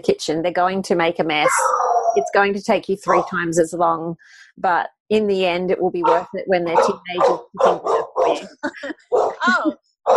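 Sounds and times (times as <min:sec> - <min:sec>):
speech: 0:00.0 - 0:10.1
dog barking with short yaps and whiny yips: 0:01.4 - 0:02.3, 0:03.1 - 0:03.4, 0:06.0 - 0:08.5, 0:09.1 - 0:09.4.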